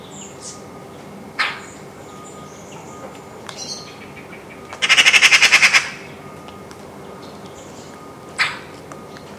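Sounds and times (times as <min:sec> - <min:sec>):
Eurasian magpie chattering: 0:03.6 - 0:06.1.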